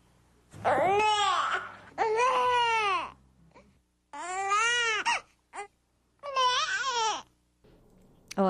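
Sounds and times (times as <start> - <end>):
hungry infant crying with a nasal neh sound: 0.6 - 7.3.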